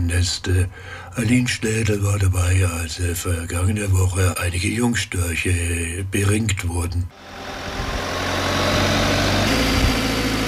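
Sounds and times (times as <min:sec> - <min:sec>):
speech: 0:00.1 - 0:07.6
aerial lift truck engine idling while raising a worker to a stork nest: 0:07.2 - 0:10.4.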